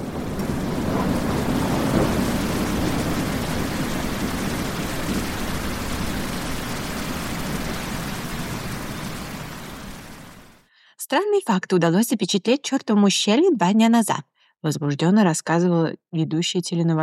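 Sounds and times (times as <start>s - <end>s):
deep rumble of thunder: 0.0s - 10.6s
heavy rain downpour pounding: 0.0s - 10.6s
speech: 11.1s - 17.0s.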